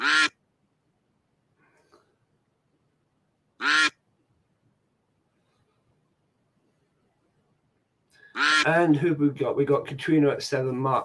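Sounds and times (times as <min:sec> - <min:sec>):
duck quacks from a duck race game: 0:00.0 - 0:00.4, 0:03.6 - 0:04.0, 0:08.3 - 0:08.7
speech: 0:08.4 - 0:11.0.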